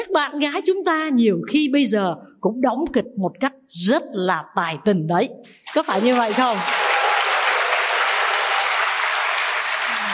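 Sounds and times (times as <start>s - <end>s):
speech: 0.1s - 6.8s
audience applause: 5.8s - 10.1s.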